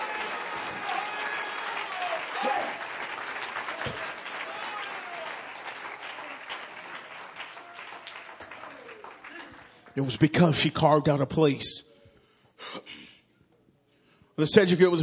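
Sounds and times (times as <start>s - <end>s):
worship audience clapping hands: 0.0s - 10.6s
speech: 10.0s - 11.9s, 14.4s - 15.0s.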